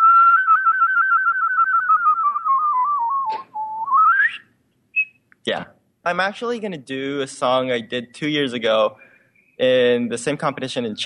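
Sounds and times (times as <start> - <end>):
clear human whistle trilling between two neighbouring pitches: 0.0 - 5.2
speech: 5.5 - 9.0, 9.6 - 11.0.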